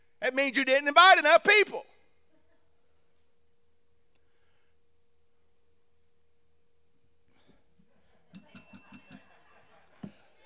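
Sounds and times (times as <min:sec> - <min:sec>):
speech: 0:00.3 - 0:01.9
small metallic bell ringing: 0:08.3 - 0:10.0.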